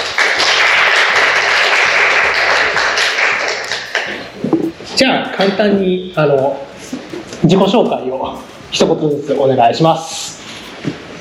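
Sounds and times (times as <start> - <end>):
audience applause welcoming guests: 0.0 - 4.3
speech: 5.0 - 6.7, 7.4 - 10.2.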